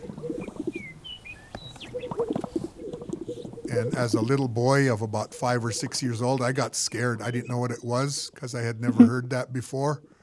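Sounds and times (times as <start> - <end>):
thin whistled bird notes: 0.0 - 3.7
greater sage-grouse display popping and bubbling: 0.0 - 6.0
speech: 3.7 - 10.1.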